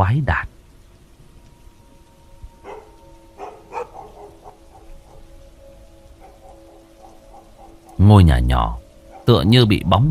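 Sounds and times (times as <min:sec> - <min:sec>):
speech: 0:00.0 - 0:00.5, 0:08.0 - 0:10.0
rain falling steadily in a village at night: 0:00.0 - 0:10.0
dogs barking in a village: 0:02.6 - 0:08.2, 0:08.8 - 0:09.5.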